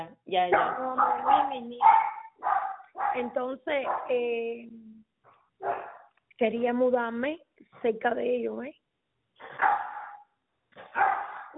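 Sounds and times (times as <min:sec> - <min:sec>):
speech: 0:00.0 - 0:04.9, 0:05.6 - 0:08.8
small dog yapping: 0:00.6 - 0:03.2, 0:05.6 - 0:06.1, 0:10.8 - 0:11.5.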